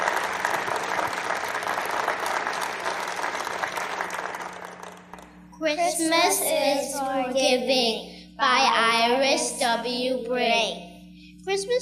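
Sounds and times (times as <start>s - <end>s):
audience applause: 0.0s - 5.3s
speech: 5.7s - 10.8s, 11.4s - 11.8s.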